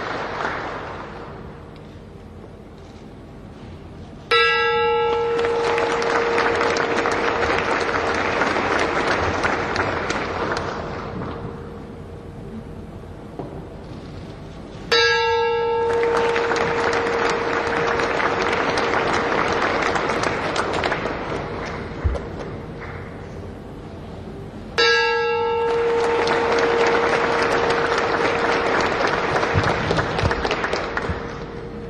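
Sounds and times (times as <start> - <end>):
steady applause: 0.0 - 1.6, 5.1 - 11.4, 15.8 - 23.2, 25.6 - 31.8
ceremonial bell at the Tokyo Stock Exchange struck with a wooden mallet: 4.2 - 12.4, 14.5 - 22.0, 24.7 - 31.8
crowd noise: 5.4 - 13.8, 15.8 - 31.8.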